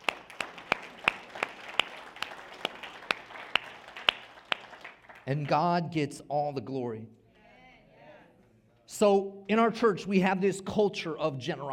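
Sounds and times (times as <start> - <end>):
audience applause: 0.0 - 5.4
sharp claps in a regular rhythm: 0.0 - 5.6
speech: 5.3 - 7.2, 9.0 - 11.7.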